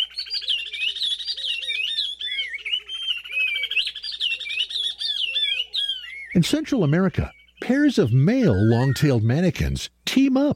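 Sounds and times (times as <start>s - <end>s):
male oriole warbler clear sliding whistles: 0.0s - 6.4s
female oriole warbler rapid rising staccato chirps: 0.0s - 9.8s
speech: 6.4s - 10.5s.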